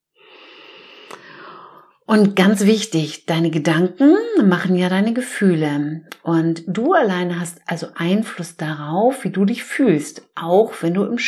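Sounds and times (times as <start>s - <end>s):
long deep breath: 0.1s - 2.0s
speech: 2.1s - 11.2s.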